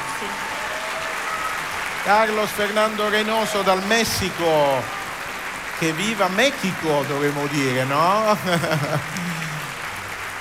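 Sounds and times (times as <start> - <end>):
theatre audience applause: 0.0 - 10.3
speech: 2.0 - 5.0, 5.8 - 9.5
laughter: 7.4 - 10.0.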